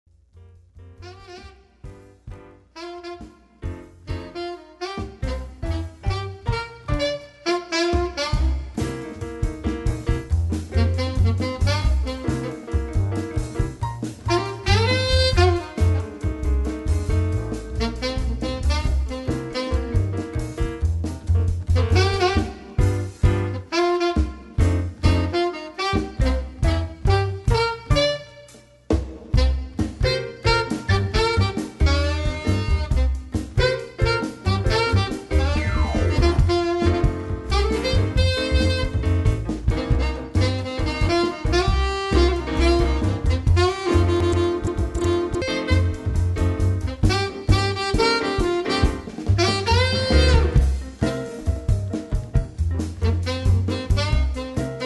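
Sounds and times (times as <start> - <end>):
jazz quartet playing: 0.8 - 54.8.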